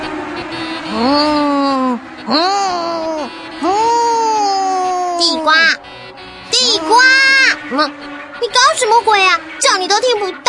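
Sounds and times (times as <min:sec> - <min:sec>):
voice imitating a racing car engine, pretending to drive a Formula 1 car: 0:00.3 - 0:10.4.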